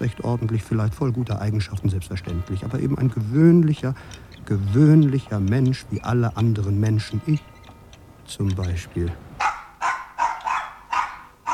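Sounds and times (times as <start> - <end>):
speech: 0.0 - 7.5, 8.3 - 9.3
small dog barking in sharp high-pitched yaps: 9.4 - 11.5.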